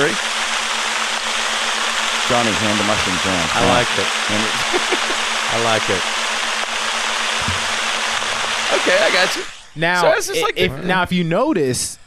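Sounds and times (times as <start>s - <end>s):
speech: 0.0s - 0.3s, 2.3s - 6.2s, 8.8s - 12.0s
white noise track meant to sound like rain: 0.0s - 11.0s
people laughing: 2.3s - 6.0s, 8.7s - 12.0s.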